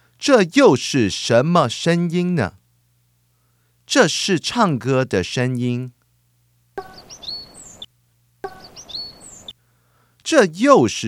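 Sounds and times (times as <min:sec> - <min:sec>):
speech: 0:00.2 - 0:02.6, 0:03.9 - 0:06.0, 0:10.3 - 0:11.0
birds chirping with quick high whistles: 0:06.8 - 0:09.6.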